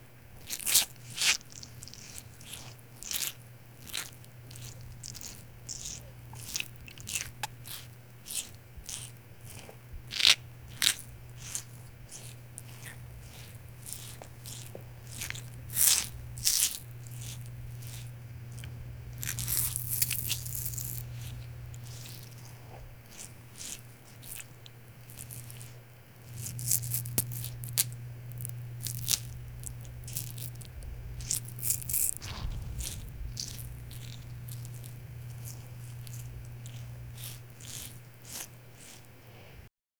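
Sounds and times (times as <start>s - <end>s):
crunchy sand for ASMR: 0.4s - 39.5s.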